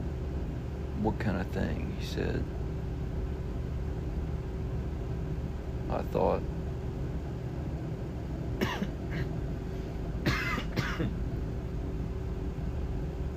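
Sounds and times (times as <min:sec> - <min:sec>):
steady low hum: 0:00.0 - 0:13.3
speech: 0:01.0 - 0:02.6, 0:05.9 - 0:06.6
raspy coughs: 0:08.6 - 0:09.4, 0:10.2 - 0:11.2
throat clearing: 0:08.6 - 0:09.4, 0:10.3 - 0:11.2.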